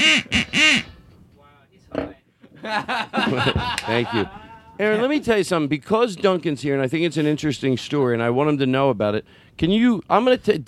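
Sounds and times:
duck quacking: 0.0s - 0.9s
laughter: 2.5s - 5.2s
speech: 2.6s - 10.6s.

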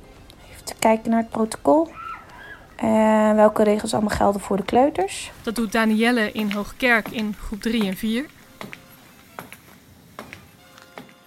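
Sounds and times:
speech: 0.8s - 2.0s, 2.8s - 8.8s
high heels clicking on hard floor of an empty classroom: 6.4s - 11.2s.

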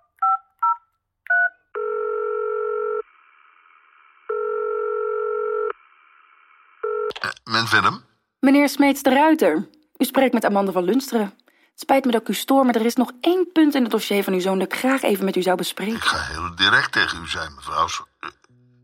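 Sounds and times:
long steady telephone line tones: 0.3s - 3.1s, 4.3s - 5.8s, 6.9s - 7.1s
speech: 7.6s - 18.1s.

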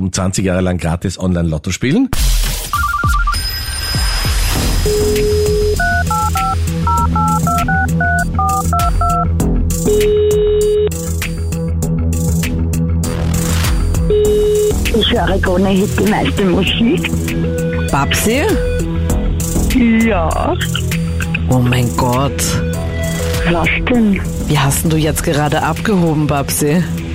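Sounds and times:
speech: 0.0s - 2.4s, 15.1s - 18.8s, 19.8s - 20.9s, 21.5s - 22.7s, 23.5s - 27.0s
steady music bed: 2.2s - 27.1s
telephone keypad DTMF tones dialing a number: 5.8s - 9.2s.

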